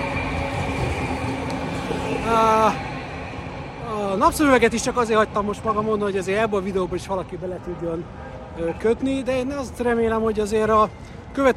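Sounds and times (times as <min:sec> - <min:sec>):
harmonic whine or squeal of passing tram: 0:00.0 - 0:05.7
tram rumbling past on a street: 0:00.0 - 0:06.5
steady low drone of street traffic: 0:00.0 - 0:11.5
speech: 0:04.2 - 0:11.5.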